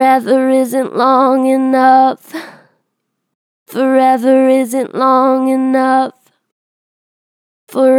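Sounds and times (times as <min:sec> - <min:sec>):
vocals with strong natural vibrato: 0:00.0 - 0:02.6, 0:03.7 - 0:06.3, 0:07.7 - 0:07.9.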